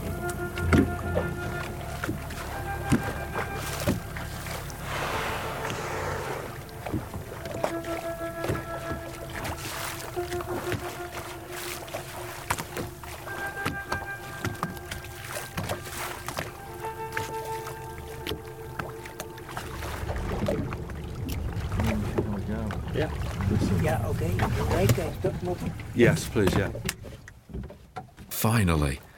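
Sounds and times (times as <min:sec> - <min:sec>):
small boat creaks and knocks: 0:00.0 - 0:04.7, 0:06.6 - 0:28.3
low hums: 0:00.0 - 0:08.3, 0:17.8 - 0:26.4
water washing and lapping around a small boat hull on the open sea: 0:00.0 - 0:28.9
speech: 0:26.0 - 0:26.9, 0:28.4 - 0:29.1.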